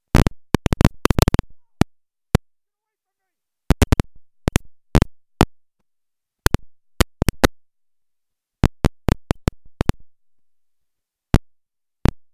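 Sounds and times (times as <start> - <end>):
microphone popping: 0.1 - 1.9, 3.7 - 5.5, 6.5 - 7.5, 8.6 - 10.0.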